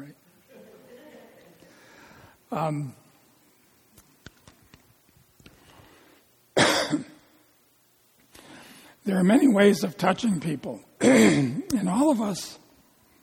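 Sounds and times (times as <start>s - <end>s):
laughter: 0.4s - 1.7s
speech: 2.5s - 3.0s, 9.1s - 12.6s
harsh loud coughs: 6.6s - 7.2s, 11.0s - 11.6s.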